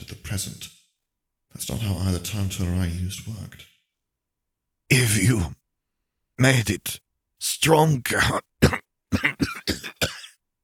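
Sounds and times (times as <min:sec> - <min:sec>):
speech: 0:00.3 - 0:00.8, 0:01.6 - 0:03.7, 0:04.9 - 0:05.6, 0:06.4 - 0:10.1
rough raspy cough: 0:08.3 - 0:10.4.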